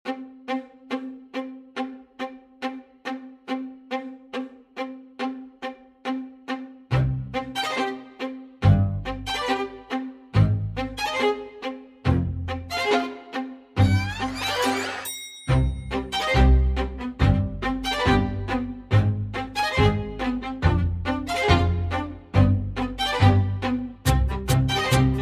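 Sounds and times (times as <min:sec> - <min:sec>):
strings: 0:00.0 - 0:25.2
percussion: 0:13.8 - 0:19.1, 0:24.0 - 0:25.2.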